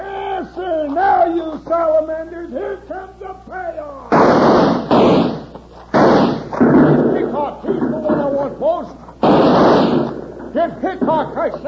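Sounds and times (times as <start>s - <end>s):
speech: 0.6s - 5.2s, 6.8s - 9.0s, 9.8s - 11.6s
ricochet-like whining tones in a western radio drama shootout: 4.1s - 7.0s, 9.2s - 10.2s
gunshots during a shootout in a western radio drama: 4.1s - 8.4s, 9.2s - 10.4s.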